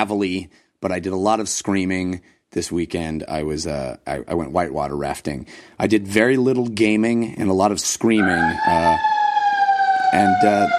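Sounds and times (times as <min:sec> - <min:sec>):
speech: 0:00.0 - 0:09.1, 0:10.1 - 0:10.7
fire truck siren: 0:08.2 - 0:10.7.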